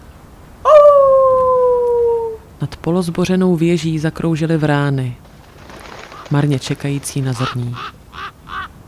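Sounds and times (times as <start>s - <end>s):
wolf howling in the distance: 0.7s - 2.4s
speech: 2.6s - 5.2s, 6.3s - 8.0s.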